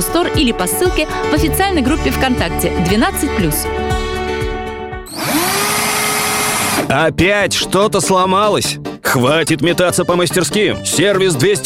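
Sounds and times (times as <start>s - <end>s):
speech: 0.0s - 4.0s, 6.9s - 11.6s
rotary hammer drill running: 5.1s - 6.9s.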